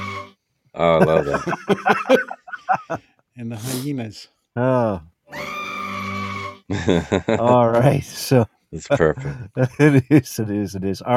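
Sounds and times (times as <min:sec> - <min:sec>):
laughter: 0:00.8 - 0:03.0, 0:06.7 - 0:10.7
speech: 0:00.8 - 0:05.6, 0:06.7 - 0:11.1
screaming goat sound effect: 0:05.3 - 0:06.6.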